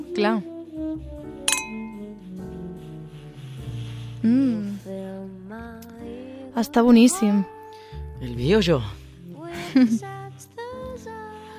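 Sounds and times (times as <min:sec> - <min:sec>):
soft music: 0:00.0 - 0:11.5
speech: 0:00.2 - 0:01.2, 0:04.2 - 0:04.5, 0:06.6 - 0:07.6, 0:08.2 - 0:09.0, 0:09.7 - 0:10.2
wine glasses clinking in a toast: 0:01.5 - 0:02.0.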